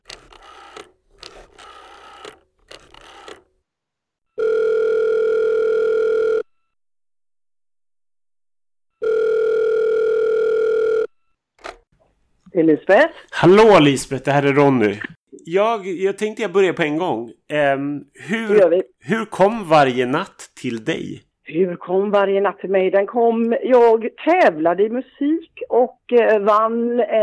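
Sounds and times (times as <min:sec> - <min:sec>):
steady electronic telephone ringback tone: 0:04.4 - 0:06.8, 0:09.0 - 0:11.4
speech: 0:12.6 - 0:27.2.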